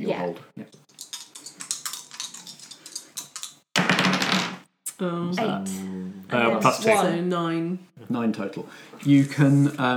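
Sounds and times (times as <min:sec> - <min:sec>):
speech: 0:00.0 - 0:00.8, 0:05.0 - 0:09.9
two dice rolled for a game: 0:01.0 - 0:04.6.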